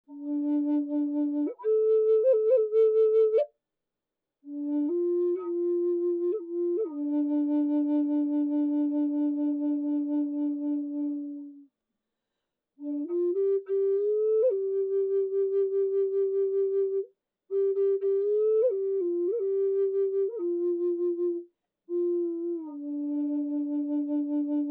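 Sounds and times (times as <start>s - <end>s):
bass flute in D made of Eastern cedar: 0.1s - 3.5s, 4.5s - 11.6s, 12.8s - 24.6s.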